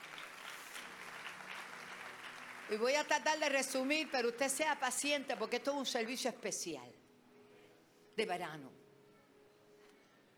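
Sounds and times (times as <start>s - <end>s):
congregation applauding during a church service: 0.0s - 5.7s
speech: 2.7s - 7.0s, 8.2s - 8.8s.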